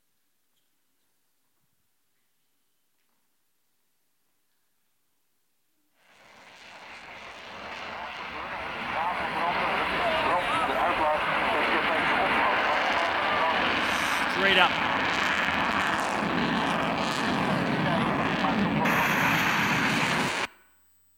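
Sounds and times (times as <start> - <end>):
F-35 fighter jet roaring in flight: 6.1 - 20.5.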